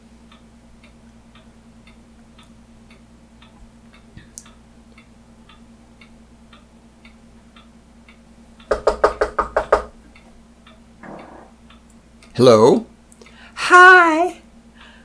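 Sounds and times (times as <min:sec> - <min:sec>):
faint steady ticking: 0:00.0 - 0:15.0
knocking on a door: 0:08.7 - 0:10.0
speech: 0:12.4 - 0:12.9.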